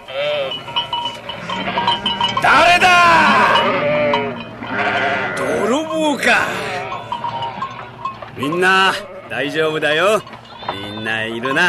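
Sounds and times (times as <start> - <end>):
sheep and lambs bleating: 0.0 - 11.6
speech: 8.4 - 10.4, 11.0 - 11.6.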